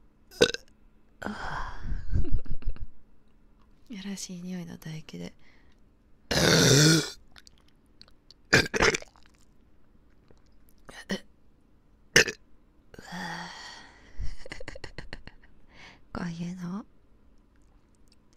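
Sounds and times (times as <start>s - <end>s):
person burping close to the microphone: 0.3s - 0.6s, 6.3s - 7.2s, 8.5s - 9.2s, 12.2s - 12.4s
speech: 1.2s - 1.5s, 3.9s - 5.3s.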